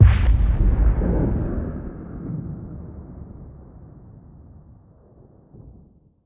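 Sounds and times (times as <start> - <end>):
dragon death explosion: 0.0 - 2.8.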